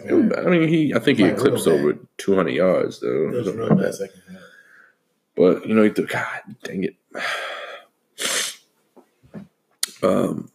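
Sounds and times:
speech: 0.3 - 4.3, 5.4 - 7.5, 10.0 - 10.5
person sniffing: 7.2 - 8.7
person sneezing: 8.2 - 8.6.

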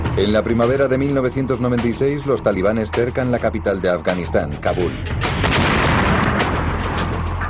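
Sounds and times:
speech: 0.2 - 5.5
booming rocket blasts in a bombardment of a city: 5.1 - 7.4
crackling gunfire: 5.3 - 7.1.

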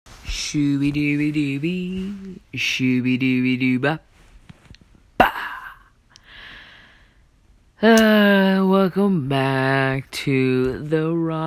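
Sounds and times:
speech: 0.3 - 4.1, 7.8 - 11.4
person yawning: 5.2 - 6.0.

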